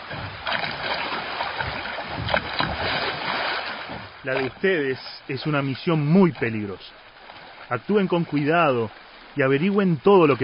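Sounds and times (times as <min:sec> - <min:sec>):
river water sloshing and lapping around a small raft at the bank: 0:00.0 - 0:10.4
knocks against a small raft: 0:01.4 - 0:04.6
speech: 0:04.2 - 0:07.0, 0:07.7 - 0:10.4.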